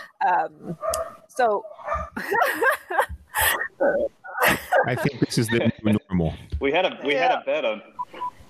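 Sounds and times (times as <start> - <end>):
speech: 0.2 - 8.3
dog barking and yelping at home: 0.7 - 2.2, 3.4 - 5.0
laughter: 2.2 - 6.3.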